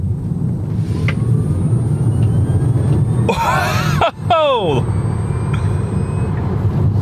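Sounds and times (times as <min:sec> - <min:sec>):
electric car moving along a road heard from inside the cabin: 0:00.0 - 0:07.0
brief high-pitched vocal exclamation: 0:03.3 - 0:04.8.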